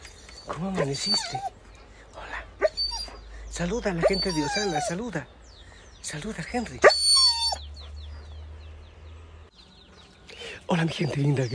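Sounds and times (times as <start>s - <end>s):
small dog whimpering in greeting: 0.4s - 1.5s, 4.0s - 4.9s, 6.8s - 7.6s
speech: 0.5s - 1.6s, 3.6s - 5.4s, 6.0s - 6.9s, 10.7s - 11.5s.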